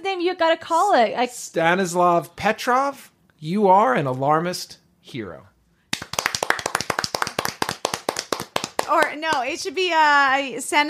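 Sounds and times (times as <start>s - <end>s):
speech: 0.1s - 5.5s, 8.9s - 10.8s
hands clapping: 5.9s - 9.6s.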